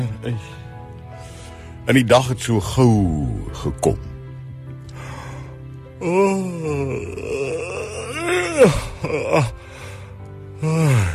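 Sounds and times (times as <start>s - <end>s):
speech: 0.0s - 0.6s, 1.8s - 4.1s, 6.0s - 7.4s, 8.6s - 9.6s
long drawn-out yawn with groaning moaning vocal tones: 4.9s - 11.1s.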